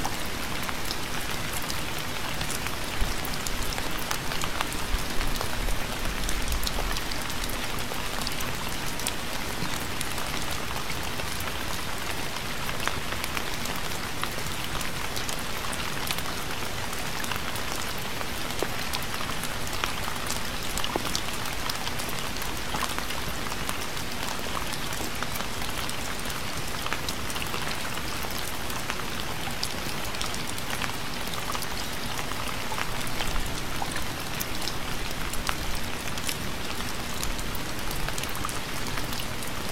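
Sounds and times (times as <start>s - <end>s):
early autumn rain falling steadily: 0.0s - 39.7s.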